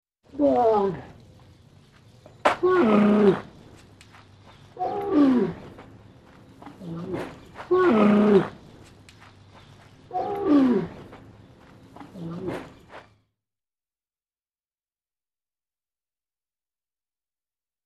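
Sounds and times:
speech: 0.3 - 1.1
camel grunting in deep rough gurgling roars: 2.6 - 3.6, 4.8 - 6.0, 6.6 - 8.7, 10.1 - 11.3, 12.0 - 12.9.

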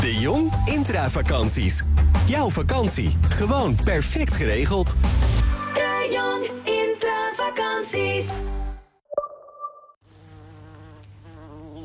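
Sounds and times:
music: 0.0 - 9.0
speech: 0.2 - 5.5, 7.8 - 8.6
bees buzzing: 10.1 - 11.8.

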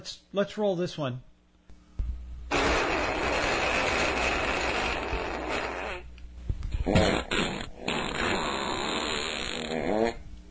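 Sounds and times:
speech: 0.0 - 1.3, 6.9 - 7.3
rasping fart recorded in the mouth of a cave: 2.5 - 6.1, 6.8 - 10.2.

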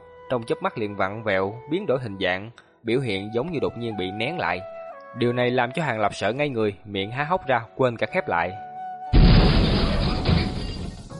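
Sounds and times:
speech: 0.3 - 8.7
huge explosion of an enormous glowing orb bursting in the sky: 9.2 - 11.1.

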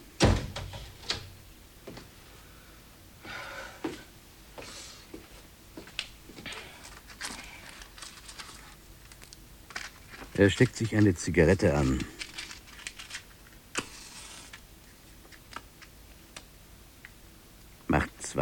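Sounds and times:
door shutting with a heavy low thud: 0.2 - 1.3
speech: 10.4 - 12.2.

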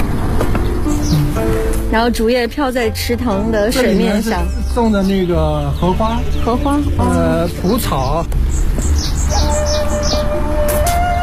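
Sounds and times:
small birds chirping in a garden with a pond and lotus plants: 0.2 - 1.4, 3.0 - 10.4
speech: 1.9 - 8.8.

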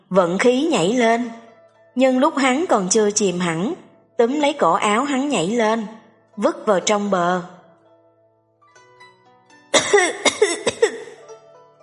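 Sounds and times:
speech: 0.1 - 1.4, 2.0 - 7.6, 9.9 - 10.7
person lying on the ground coughing after being pulled out of water: 9.8 - 11.2.

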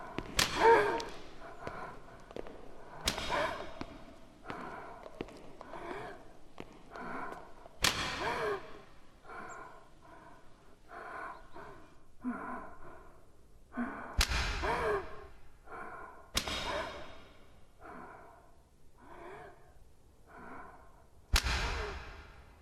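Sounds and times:
whip cracking in a castle scene: 0.0 - 2.2, 2.9 - 4.1, 7.8 - 8.4, 14.2 - 14.6, 21.3 - 22.5
breathing sounds: 0.0 - 22.6.

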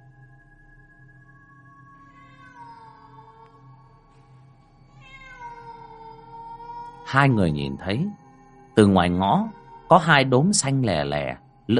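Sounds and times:
black cat meowing at night: 2.1 - 3.6, 5.0 - 7.8
speech: 7.1 - 8.2, 8.8 - 11.7.

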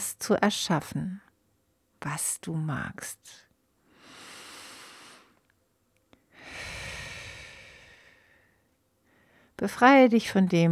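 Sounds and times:
speech: 0.2 - 1.2, 2.0 - 3.5, 9.6 - 10.7
deep breathing during a guided breathing exercise: 3.9 - 5.5, 6.3 - 9.6.

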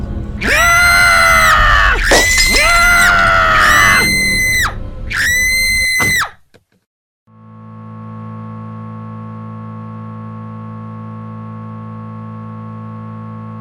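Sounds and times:
several people screaming in high-pitched sustained cries: 0.4 - 6.3.

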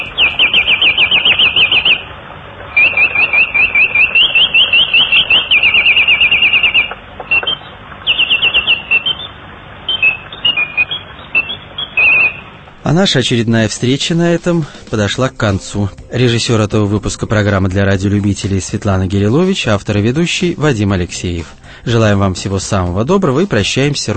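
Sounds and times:
bulbul bird singing: 0.0 - 2.1, 2.7 - 12.6
speech: 12.9 - 24.1.

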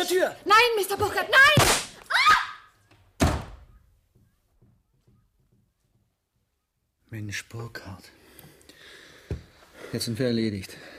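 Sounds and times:
speech: 0.0 - 1.9, 7.1 - 8.2, 9.3 - 10.9
gunshots fired at range: 1.6 - 2.0.

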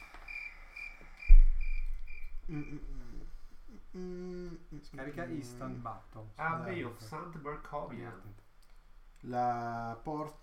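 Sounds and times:
crickets chirping below a slaughterhouse: 0.0 - 3.2
low thump: 1.3 - 2.5
speech: 2.5 - 3.0, 3.9 - 8.5, 9.2 - 10.4.

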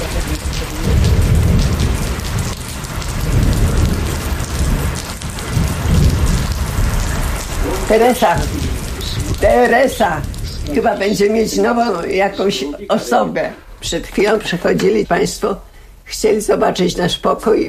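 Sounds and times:
low rumbles of thunder: 0.0 - 15.4
steady heavy rain: 0.0 - 17.6
speech: 7.9 - 8.6, 9.4 - 17.6.

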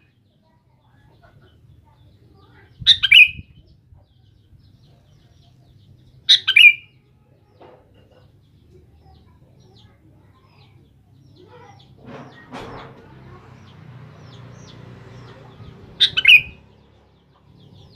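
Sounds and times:
sooty-headed bulbul singing bubbly phrases: 2.8 - 3.6, 16.0 - 16.6.

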